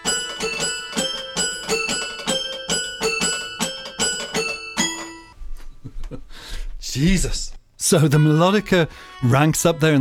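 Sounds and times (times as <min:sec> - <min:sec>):
toy piano melody: 0:00.0 - 0:05.4
speech: 0:07.0 - 0:10.0.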